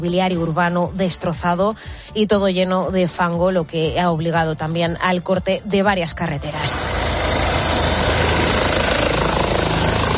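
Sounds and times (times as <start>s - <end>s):
speech: 0.0s - 7.0s
rescue helicopter rotor: 6.5s - 10.1s.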